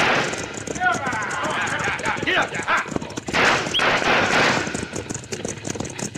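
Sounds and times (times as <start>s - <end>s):
rapid bursts of gunfire at a stagecoach driver: 0.0s - 1.4s, 3.3s - 5.2s
hoofbeats: 0.0s - 6.1s.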